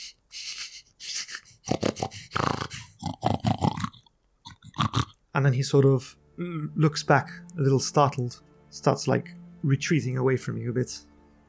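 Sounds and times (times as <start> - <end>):
person imitating a boar sniffling: 0.0 - 5.2
person imitating a boar with grunting snorts: 1.1 - 5.2
speech: 5.4 - 11.1.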